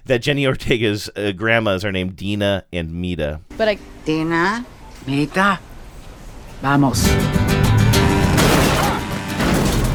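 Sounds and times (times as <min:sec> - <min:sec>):
speech: 0:00.1 - 0:05.7, 0:06.6 - 0:07.5
motorized mobility scooters ramming into a car: 0:08.0 - 0:09.9.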